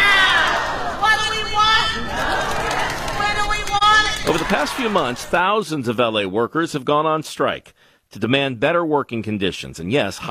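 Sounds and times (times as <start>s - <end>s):
large outdoor crowd at a solidarity march cheering and chanting: 0.0s - 5.4s
speech: 4.5s - 10.2s.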